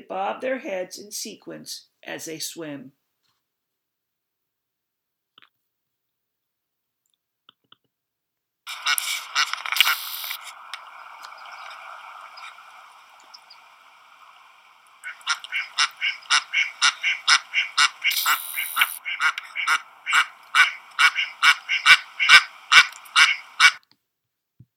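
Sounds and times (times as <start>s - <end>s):
speech: 0.1s - 3.0s
ducks calling while swimming on a river: 8.7s - 23.8s.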